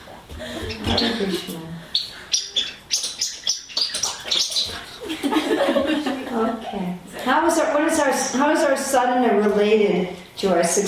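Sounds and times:
speech: 1.2 - 1.9, 7.6 - 10.8
shaken toy figurines from Gujarat chirping like birds: 2.0 - 4.8
laughter: 4.9 - 6.7.

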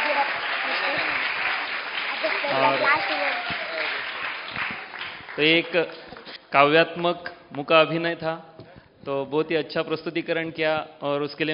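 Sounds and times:
crowd applauding schoolchildren after a poetic mime performance: 0.0 - 6.4
speech: 2.5 - 3.9, 5.4 - 11.5.

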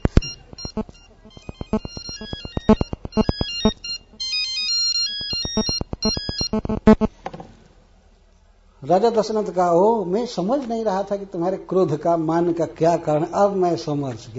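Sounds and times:
mobile phone ringtone bright electronic melody: 0.0 - 7.1
speech: 0.8 - 1.0, 8.9 - 14.3.

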